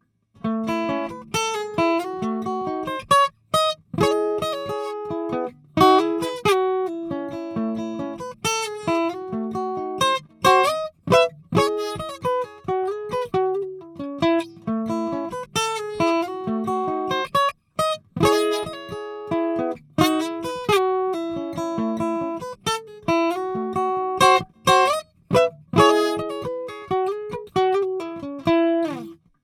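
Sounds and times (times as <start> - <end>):
Taylor 314ce acoustic guitar recorded with a Shure SM57 microphone: 0.0 - 29.4.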